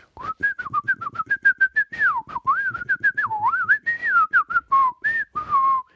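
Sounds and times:
person whistling in imitation of a bird: 0.0s - 5.9s.

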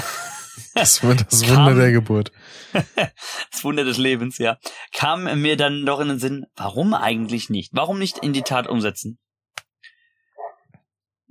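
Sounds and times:
laughter: 0.0s - 3.7s
speech: 0.6s - 9.2s
dog barking: 8.1s - 8.6s, 10.4s - 10.6s.

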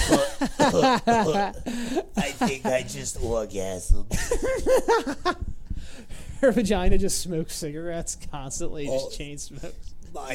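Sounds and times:
voice imitating a cough: 0.0s - 1.6s
laughter: 0.0s - 3.2s, 4.1s - 5.4s
speech: 0.4s - 10.3s.

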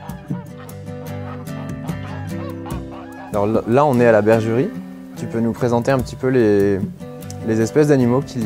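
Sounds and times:
flock of geese honking on a farm: 0.0s - 5.4s
speech: 3.3s - 8.4s.

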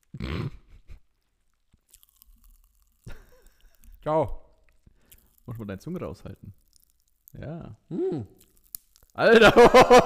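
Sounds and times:
crunching and biting candy: 1.1s - 7.4s, 8.3s - 9.2s
speech: 4.0s - 4.4s, 5.5s - 6.6s, 7.4s - 8.4s, 9.2s - 10.0s
laughter: 9.3s - 10.0s.

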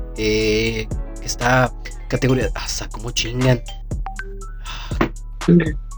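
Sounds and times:
speech: 0.2s - 3.8s, 5.5s - 5.8s
short electronic notification chime of a phone messaging app: 3.5s - 5.1s.

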